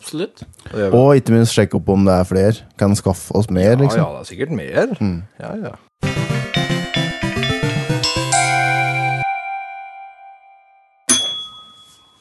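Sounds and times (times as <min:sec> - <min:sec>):
speech: 0:00.1 - 0:05.9
single sharp bell ding marking a new topic: 0:06.6 - 0:12.1
bright tinkling bell tones climbing to a sustained ringing note: 0:06.8 - 0:10.4, 0:11.1 - 0:12.1.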